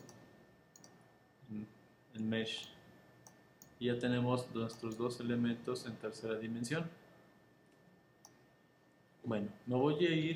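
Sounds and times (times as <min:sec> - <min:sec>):
faint computer mouse right-clicks: 0:00.0 - 0:01.0, 0:04.7 - 0:05.1
quiet hum: 0:00.0 - 0:10.3
speech: 0:01.5 - 0:02.8, 0:03.8 - 0:07.0, 0:09.3 - 0:10.3.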